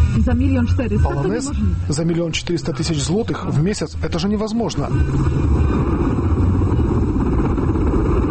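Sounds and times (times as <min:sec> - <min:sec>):
speech: 0:00.2 - 0:05.8
heavy cargo helicopter engine and rotors landing: 0:04.9 - 0:08.2.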